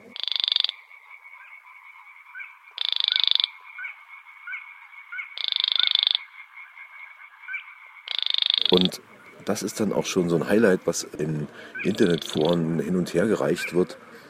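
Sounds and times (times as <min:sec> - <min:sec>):
male Baillon's Crake creaking call in reedbeds: 0:00.0 - 0:00.8, 0:02.4 - 0:03.9, 0:04.5 - 0:06.3, 0:07.5 - 0:10.0, 0:11.4 - 0:12.6
faint steady tone: 0:00.0 - 0:14.2
speech: 0:08.7 - 0:14.1.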